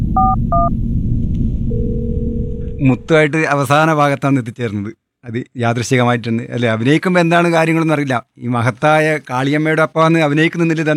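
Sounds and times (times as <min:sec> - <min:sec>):
low rumbling background: 0:00.0 - 0:03.1
steady lower telephone tone: 0:00.0 - 0:03.1
speech: 0:02.8 - 0:10.9.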